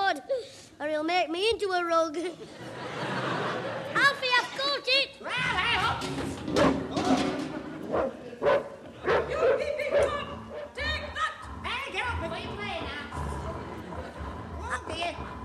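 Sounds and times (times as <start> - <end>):
speech: 0.9 - 3.0, 4.0 - 7.3, 7.9 - 8.6
laughter: 2.2 - 4.0, 7.0 - 11.6, 12.4 - 15.4
dog barking in sharp loud bursts: 7.9 - 10.7
voices clamoring: 9.0 - 15.4.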